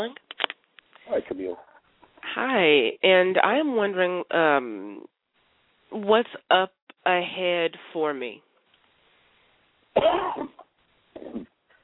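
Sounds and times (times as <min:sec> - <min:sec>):
speech: 0:00.0 - 0:00.2, 0:01.1 - 0:01.7, 0:02.3 - 0:05.1, 0:05.9 - 0:08.5, 0:10.0 - 0:10.6, 0:11.2 - 0:11.5
person coughing: 0:10.0 - 0:10.6.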